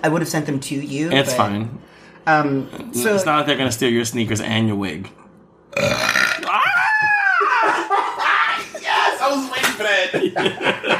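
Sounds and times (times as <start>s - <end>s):
speech: 0.0s - 5.2s, 9.8s - 10.9s
long loud burp rising and falling in pitch: 5.7s - 6.6s
people laughing and reacting excitedly: 6.9s - 10.9s.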